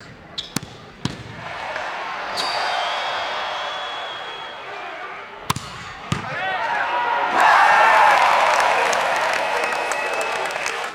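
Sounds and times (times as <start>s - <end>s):
crowd cheering: 1.2s - 10.9s
baseball bat crack: 5.4s - 7.5s.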